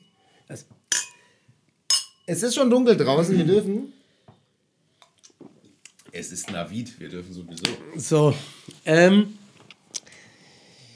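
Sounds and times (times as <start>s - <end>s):
speech: 0.5s - 1.0s, 2.3s - 4.0s, 6.2s - 9.4s
glasses clinking in a toast: 0.9s - 1.3s, 1.9s - 2.3s.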